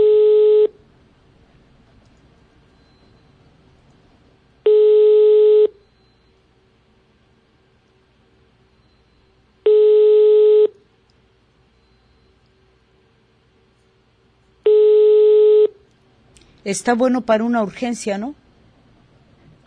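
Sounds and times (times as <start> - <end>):
ringback tone of an unanswered phone call: 0.0 - 0.8, 4.6 - 5.8, 9.7 - 10.7, 14.7 - 15.8
speech: 16.7 - 18.4.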